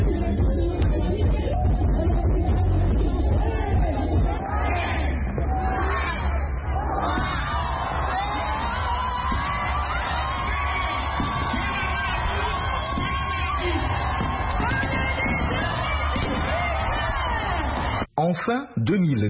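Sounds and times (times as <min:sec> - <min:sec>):
concert crowd cheering: 0:00.0 - 0:18.1
whoops and shouts from the crowd: 0:03.4 - 0:18.0
speech: 0:18.3 - 0:19.2.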